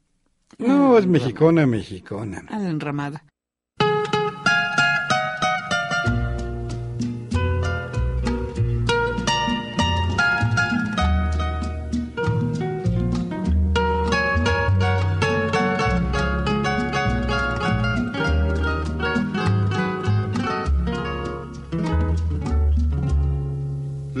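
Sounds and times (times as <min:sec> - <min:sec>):
speech: 0:00.6 - 0:03.3
instrumental intro of a Mexican song: 0:03.8 - 0:24.1
steady bass: 0:06.1 - 0:24.1.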